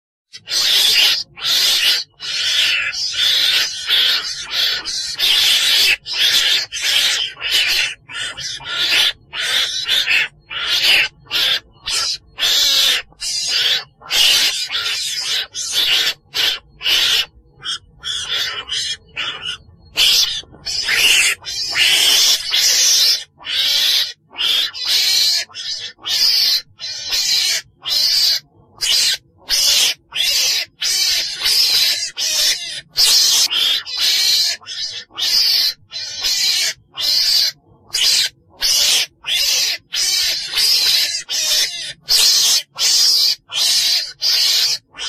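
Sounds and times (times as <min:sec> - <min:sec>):
weasel calling its pack: 0:00.3 - 0:45.0.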